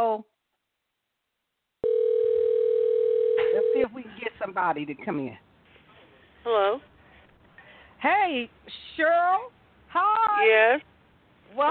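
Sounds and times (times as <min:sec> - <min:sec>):
speech: 0:00.1 - 0:00.3, 0:03.8 - 0:05.5, 0:06.4 - 0:06.9, 0:08.0 - 0:10.9
telephone line tone as a call is placed: 0:01.8 - 0:03.8.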